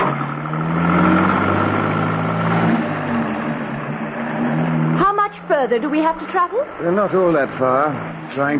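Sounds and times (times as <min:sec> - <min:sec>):
car engine drone while being driven: 0:00.0 - 0:08.5
road rumble: 0:00.0 - 0:08.5
speech: 0:05.6 - 0:08.5.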